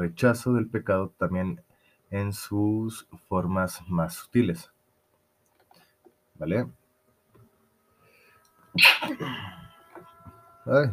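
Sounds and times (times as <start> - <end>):
speech: 0.0 - 4.8, 6.4 - 6.8, 8.8 - 9.6, 10.6 - 10.9
person sneezing: 8.8 - 9.6.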